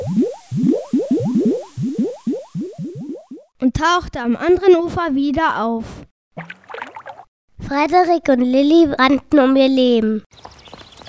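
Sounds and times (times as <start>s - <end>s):
underwater bubbling as wolf dives: 0.0s - 3.5s
speech: 3.6s - 6.0s, 7.7s - 10.5s.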